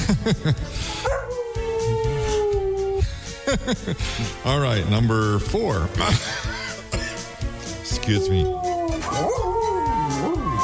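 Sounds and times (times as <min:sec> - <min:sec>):
laughter: 0:00.0 - 0:00.9, 0:03.3 - 0:04.5, 0:05.8 - 0:07.8
speech: 0:00.1 - 0:01.2, 0:03.5 - 0:06.6, 0:08.0 - 0:08.6, 0:09.2 - 0:09.5
dog barking: 0:01.0 - 0:01.4
dog howling: 0:01.0 - 0:03.0, 0:08.0 - 0:10.6.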